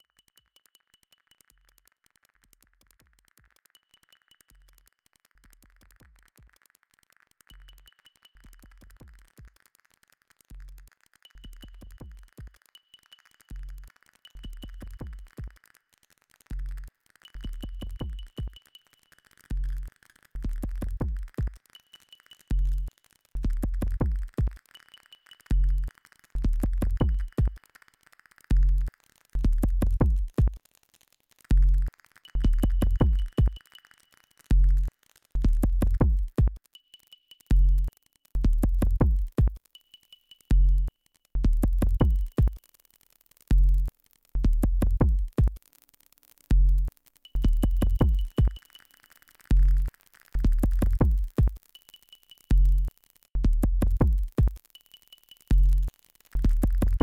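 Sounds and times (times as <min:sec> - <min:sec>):
minuet beat: 0:10.5 - 0:15.6, 0:16.5 - 0:27.8, 0:28.5 - 0:30.6, 0:31.5 - 0:36.9, 0:37.5 - 0:42.6, 0:43.5 - 0:45.6, 0:46.5 - 0:57.0.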